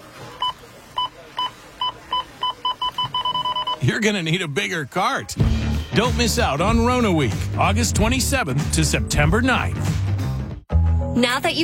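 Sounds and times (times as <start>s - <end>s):
store checkout scanner two-tone beeps: 0.0s - 3.9s
speech: 3.8s - 10.0s, 11.2s - 11.6s.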